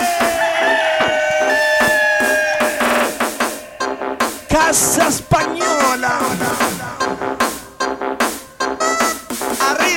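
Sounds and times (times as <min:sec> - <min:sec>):
rooster crowing: 0:00.1 - 0:04.1
regular tapping beat: 0:02.6 - 0:09.8
speech: 0:04.7 - 0:05.5.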